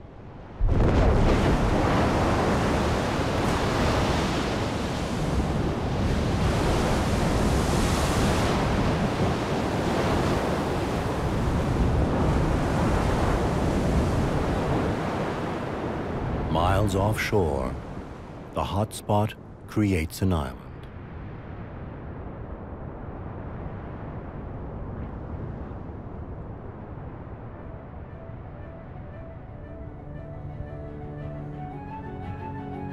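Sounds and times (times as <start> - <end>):
molten magma bursting against seawater with hissing and rumbling: 0.7 - 20.6
speech: 16.8 - 17.8, 18.6 - 20.6.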